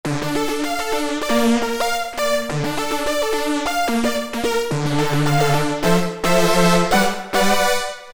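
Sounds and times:
nervoso strings on an Alesis Micron synthesizer: 0.1 - 8.1.

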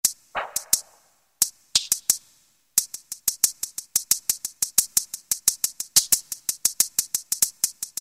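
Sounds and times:
maracas: 0.4 - 7.9.

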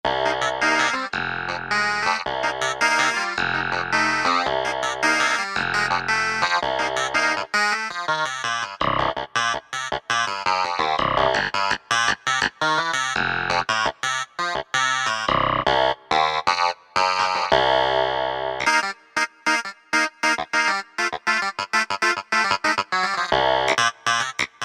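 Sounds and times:
Korg MSC-6S clavinet: 0.1 - 24.6.

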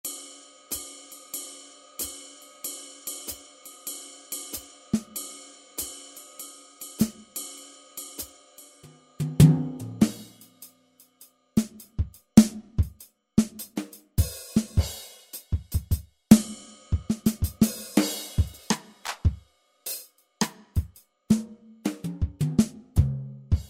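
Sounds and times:
jazzy drum kit on a synthesizer: 4.5 - 5.2, 7.0 - 7.4, 9.1 - 10.7, 11.6 - 23.6.

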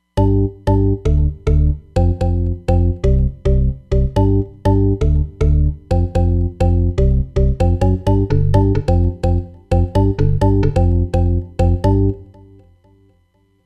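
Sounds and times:
house bass on a Roland Fantom XR: 0.2 - 12.5.

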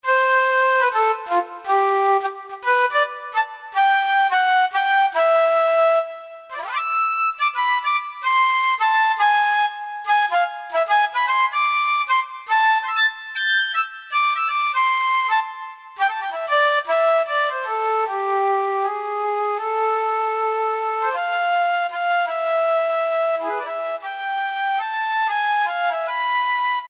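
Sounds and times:
hard flute synthesizer tone: 0.0 - 26.8.

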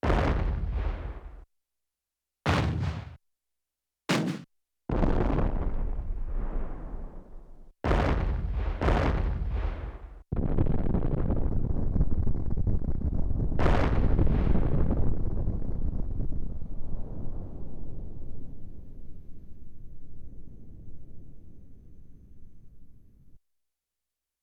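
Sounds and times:
explosion from Yamaha TX16W sampler: 0.0 - 1.4, 2.5 - 3.2, 4.1 - 19.1.

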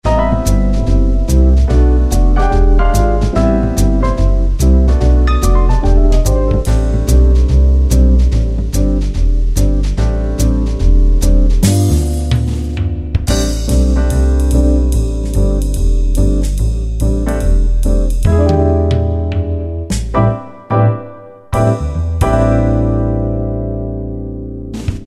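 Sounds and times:
combo jazz preset style on a Yamaha QY70: 0.0 - 25.0.

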